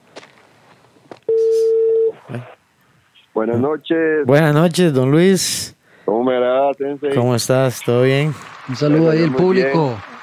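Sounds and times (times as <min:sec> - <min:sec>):
telephone dialing tone: 0:01.3 - 0:02.2
speech: 0:02.3 - 0:02.6, 0:03.4 - 0:10.1.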